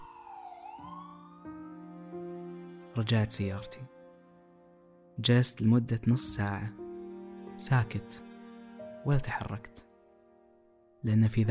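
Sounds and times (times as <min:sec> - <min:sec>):
ambulance siren wailing: 0:00.0 - 0:03.0
speech: 0:03.0 - 0:04.0, 0:05.2 - 0:06.8, 0:07.6 - 0:08.3, 0:09.0 - 0:09.9, 0:11.0 - 0:11.4.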